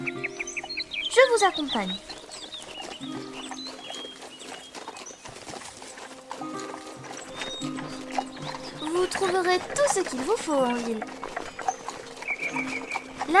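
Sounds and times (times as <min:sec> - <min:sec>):
birds chirping: 0:00.0 - 0:13.3
tired horse's hooves clip-clopping at an easy walking pace: 0:00.0 - 0:13.3
speech: 0:01.2 - 0:02.1, 0:09.1 - 0:11.3.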